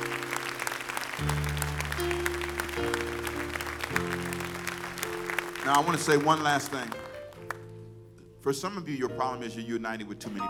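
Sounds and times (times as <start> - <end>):
audience cheering: 0.0 - 7.6
large crowd clapping enthusiastically: 0.0 - 7.7
sustained organ or keyboard chords: 0.0 - 8.0
speech: 1.2 - 2.3, 5.7 - 7.0, 8.4 - 10.4.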